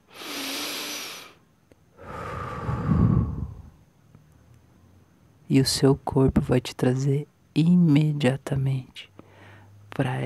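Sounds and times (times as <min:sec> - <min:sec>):
long deep breath: 0:00.0 - 0:03.8, 0:09.2 - 0:09.8
speech: 0:05.5 - 0:09.1, 0:10.0 - 0:10.2.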